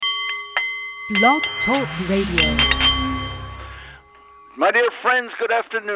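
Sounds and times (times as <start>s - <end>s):
struck Nepalese meditation bowl ringing: 0.0s - 4.6s
speech: 1.1s - 2.8s, 4.6s - 5.9s.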